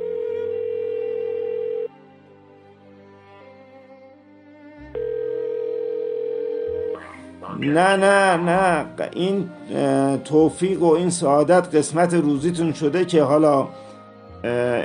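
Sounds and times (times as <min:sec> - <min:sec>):
phone ringback tone while calling: 0:00.0 - 0:01.9, 0:05.0 - 0:07.0
speech: 0:07.6 - 0:13.8, 0:14.4 - 0:14.8.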